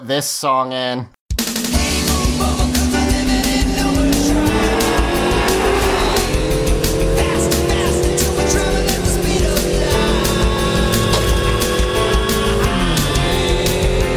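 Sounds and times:
speech: 0.0 - 1.2
sports car engine roaring at high revs: 1.8 - 14.1
sports car tires squealing: 2.2 - 13.3.

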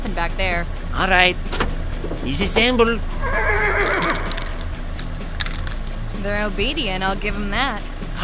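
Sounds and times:
low rumble: 0.0 - 8.2
speech: 0.2 - 4.3, 6.2 - 8.2
hooves clip-clopping: 1.9 - 6.2
horse snorting: 2.0 - 5.9
horse whinnying: 3.1 - 4.7.

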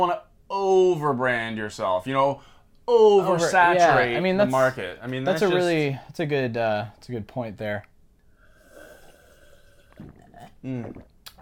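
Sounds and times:
speech: 0.0 - 7.9, 10.0 - 11.1
faint steady hiss: 0.0 - 11.3
slurp and swallow of cold water from a cup: 8.8 - 11.3.

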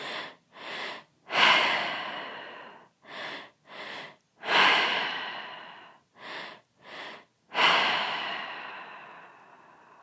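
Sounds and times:
deep rhythmic breathing during a guided breathing exercise: 0.0 - 10.0.

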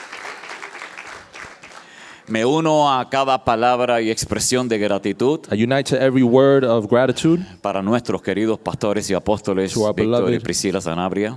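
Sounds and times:
congregation applauding: 0.0 - 2.3
speech: 2.3 - 11.3.

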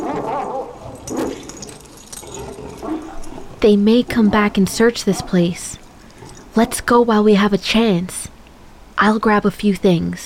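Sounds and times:
dogs barking in short yelping bursts: 0.0 - 7.2
speech: 3.6 - 5.8, 6.6 - 8.3, 9.0 - 10.2.

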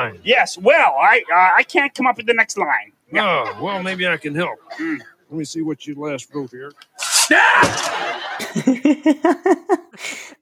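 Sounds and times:
speech: 0.0 - 10.4
comic harsh scraping whoosh: 7.0 - 8.1
comic rhythmic vocal yelps: 7.0 - 8.1
laughter: 7.1 - 10.2.

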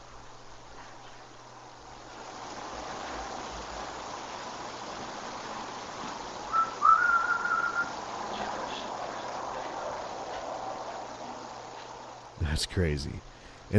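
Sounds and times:
constant hiss of noise: 0.0 - 13.7
faint short whistle on an EVP recording: 6.5 - 7.9
speech: 12.6 - 13.7.

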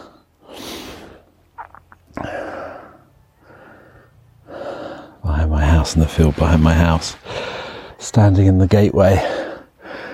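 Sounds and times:
person breathing heavily after climbing a hill: 0.0 - 1.4, 2.1 - 5.2, 7.1 - 8.0, 9.2 - 10.1
speech: 5.8 - 9.4.

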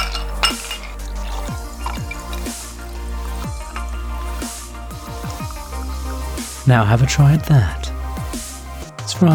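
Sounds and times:
light clinks of ice in a tumbler: 0.0 - 2.9
cocktail trickling into a tumbler over ice: 0.0 - 5.8
speech: 6.7 - 7.8.

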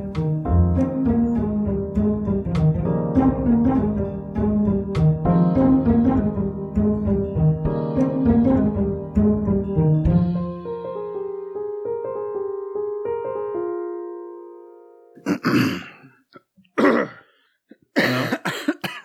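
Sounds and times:
tonal music: 0.0 - 15.1
person coughing and clearing throat: 15.2 - 16.2, 16.8 - 17.3, 18.0 - 19.0.

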